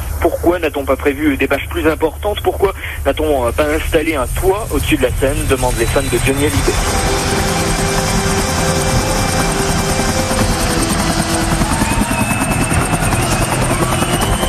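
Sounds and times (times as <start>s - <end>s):
speech: 0.2s - 7.5s
helicopter arriving at a stadium: 3.0s - 14.4s.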